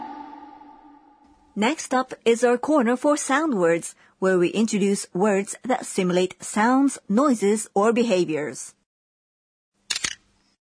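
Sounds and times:
speech: 0:01.6 - 0:08.8
camera shutter click: 0:09.9 - 0:10.2.

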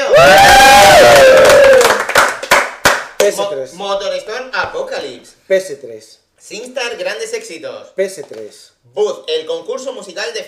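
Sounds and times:
audience ovation with cheering, shouting and applause: 0:00.0 - 0:02.9
sharp claps: 0:00.4 - 0:03.5
speech: 0:03.3 - 0:10.4.

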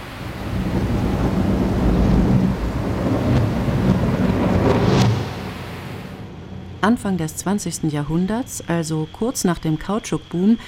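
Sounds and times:
torrential rain over the Amazon rainforest: 0:00.0 - 0:06.3
deep thunder rumbling in a raging thunderstorm: 0:00.0 - 0:06.9
wind in a raging thunderstorm: 0:00.0 - 0:08.8
speech: 0:06.8 - 0:10.6.

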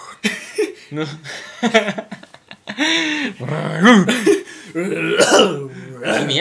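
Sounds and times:
speech: 0:00.9 - 0:02.2, 0:02.8 - 0:06.3
person imitating a barking dog-like cough: 0:04.9 - 0:06.3.

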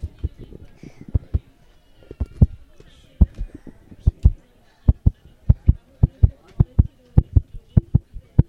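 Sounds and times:
heartbeat thumps through headphones: 0:00.0 - 0:01.5, 0:03.2 - 0:08.4.

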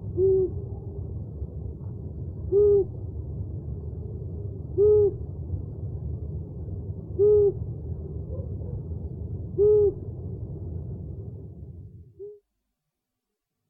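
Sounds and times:
owl hooting: 0:00.0 - 0:01.0, 0:02.5 - 0:03.0, 0:04.8 - 0:05.2, 0:07.2 - 0:07.6, 0:09.6 - 0:10.0, 0:12.2 - 0:12.4
soft low hum: 0:00.0 - 0:12.4.

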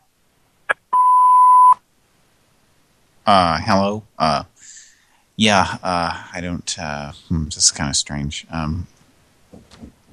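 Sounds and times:
answering machine beep: 0:01.0 - 0:01.8
speech: 0:03.3 - 0:04.8, 0:05.4 - 0:10.0.

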